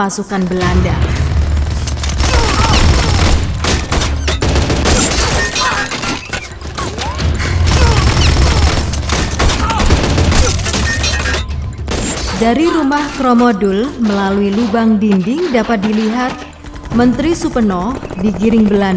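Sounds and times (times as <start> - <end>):
speech: 0.0 - 1.4, 12.4 - 18.9
dense continuous gunfire volley: 0.4 - 12.6.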